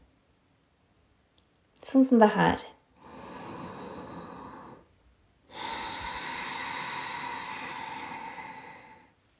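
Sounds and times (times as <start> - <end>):
speech: 1.8 - 2.8
loud hissing ujjayi breaths through a constricted throat as in ashtanga yoga: 3.0 - 4.9, 5.5 - 9.2.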